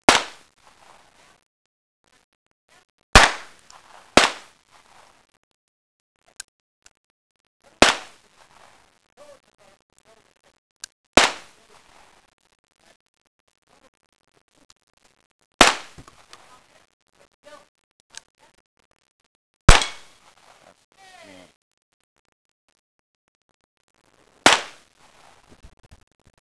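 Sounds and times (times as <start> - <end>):
gunfire: 0.0 - 0.5, 3.1 - 4.6, 7.8 - 8.2, 11.2 - 11.6, 15.6 - 16.1, 19.7 - 20.3, 24.4 - 24.9.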